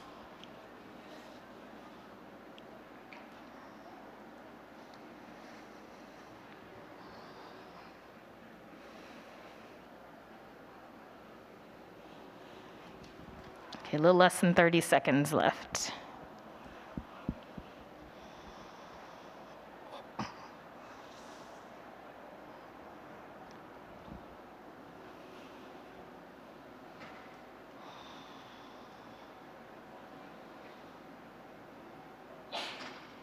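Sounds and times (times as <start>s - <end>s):
speech: 13.9s - 16.0s
person sneezing: 32.5s - 33.0s.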